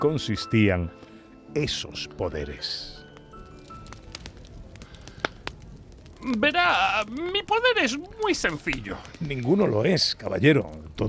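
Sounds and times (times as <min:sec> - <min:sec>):
speech: 0:00.0 - 0:03.0, 0:06.2 - 0:11.0
fire crackling in a large fireplace: 0:00.0 - 0:11.0
soft steady roar of flames: 0:02.4 - 0:11.0.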